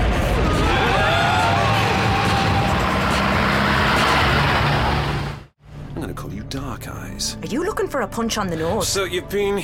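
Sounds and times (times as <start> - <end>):
road noise: 0.2 - 5.6
taxi engine revving hard as the cab accelerates away: 1.0 - 5.6
speech: 8.0 - 9.6.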